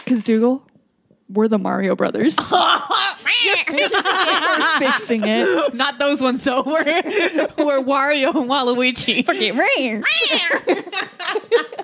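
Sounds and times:
speech: 0.1s - 0.7s, 1.3s - 11.8s
laughter: 2.4s - 11.8s
person imitating a cat: 10.0s - 10.5s.

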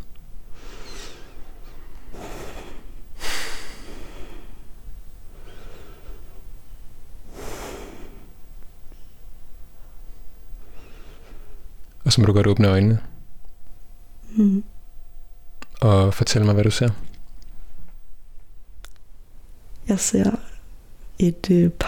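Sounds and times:
several people breathing slow deep breaths together: 0.5s - 9.2s, 9.8s - 11.8s
speech: 12.1s - 13.1s, 15.9s - 17.1s, 20.0s - 20.4s, 21.2s - 21.8s.

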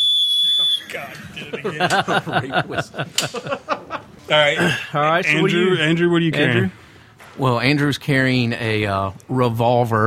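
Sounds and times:
shrill blast from a rake emergency whistle: 0.0s - 1.0s
people chattering: 0.7s - 3.6s, 4.2s - 6.8s
people laughing: 0.9s - 5.8s
speech: 0.9s - 6.8s, 7.4s - 10.0s.

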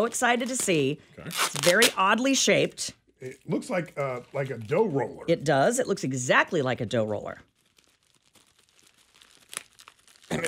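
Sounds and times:
taped wrapping paper of a gift tearing: 0.0s - 2.0s, 7.4s - 10.4s
speech: 0.0s - 7.5s.

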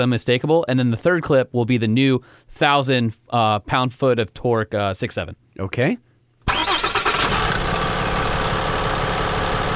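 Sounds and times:
speech: 0.0s - 6.1s
mechanically injected 5.9 diesel engine cranking and idling with ticking clatter: 6.5s - 9.7s.

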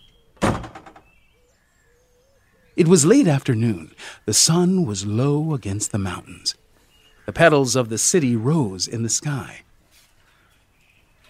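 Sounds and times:
door opening onto a street in Iwu: 0.0s - 1.1s
speech: 2.8s - 6.6s, 7.3s - 9.7s.

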